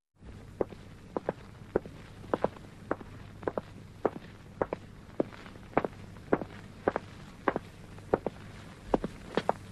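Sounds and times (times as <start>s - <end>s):
footsteps walking: 0.4s - 9.6s.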